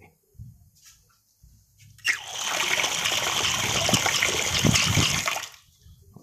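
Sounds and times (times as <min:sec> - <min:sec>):
water pouring into a clear glass: 0:02.1 - 0:05.6.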